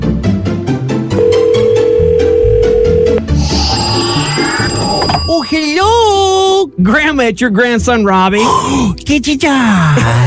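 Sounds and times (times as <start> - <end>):
busy music: 0.0 - 10.2
telephone ringing: 1.2 - 5.6
speech: 6.8 - 10.2.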